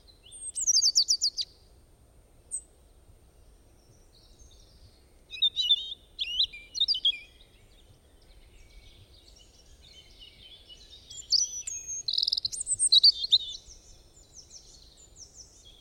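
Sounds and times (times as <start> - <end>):
bird chirping and trilling: 0.4 - 1.5, 5.3 - 7.4, 9.4 - 15.7.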